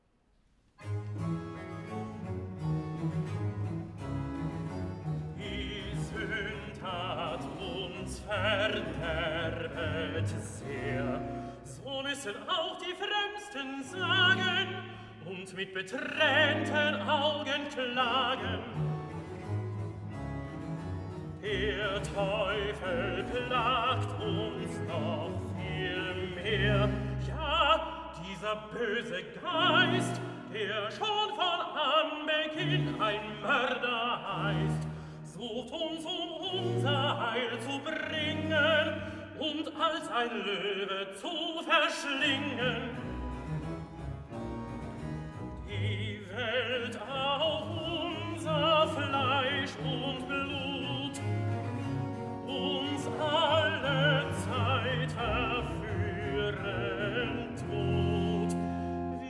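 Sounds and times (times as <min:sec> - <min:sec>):
tenor singing recitative and chorale: 0:00.8 - 0:59.2.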